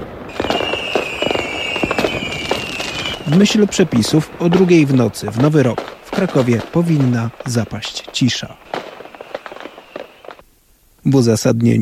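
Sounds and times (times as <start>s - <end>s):
New Year's Eve fireworks and firecrackers exploding in Kraków: 0.0s - 10.4s
thin steady whistle-like tone: 0.3s - 3.6s, 9.0s - 10.4s
speech: 3.3s - 8.8s, 11.1s - 11.7s.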